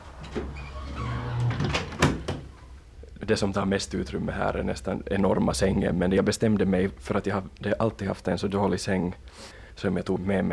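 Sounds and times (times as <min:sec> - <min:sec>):
balcony door sliding scrape: 0:00.0 - 0:02.3
low hum: 0:00.0 - 0:10.5
balcony door shutting thud: 0:00.2 - 0:02.5
speech: 0:00.4 - 0:00.7, 0:03.3 - 0:10.5.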